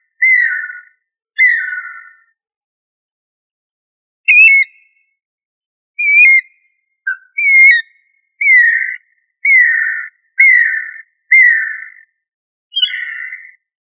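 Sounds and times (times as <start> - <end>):
bird song of clear whistled notes: 0.1 - 2.3, 4.3 - 5.0, 6.0 - 12.0, 12.7 - 13.6.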